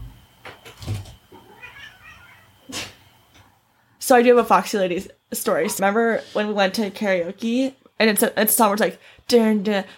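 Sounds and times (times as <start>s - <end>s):
pet cat meowing to be let in: 1.4s - 2.6s
speech: 4.1s - 9.9s.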